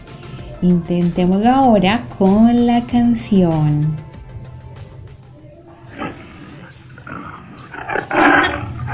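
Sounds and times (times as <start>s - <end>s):
speech: 0.6s - 4.1s
tiger growling: 4.3s - 8.9s
tiger roaring: 5.6s - 8.9s.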